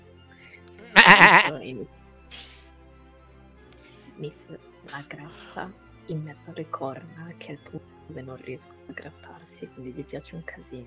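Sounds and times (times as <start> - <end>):
goat bleating: 0.8 - 1.5
speech: 1.5 - 2.4, 4.2 - 10.8.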